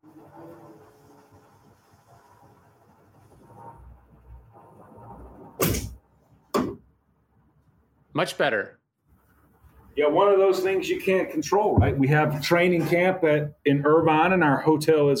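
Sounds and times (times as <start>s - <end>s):
door being shut: 5.6s - 6.9s, 11.7s - 13.0s
speech: 8.2s - 8.8s, 10.0s - 15.1s.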